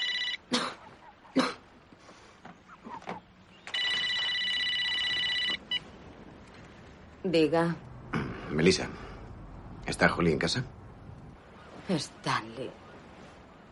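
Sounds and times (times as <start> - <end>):
telephone ringing in a luxurious apartment: 0.0 - 0.5, 3.6 - 6.0
speech: 7.3 - 7.9, 8.5 - 9.1, 9.9 - 10.8, 11.9 - 12.8.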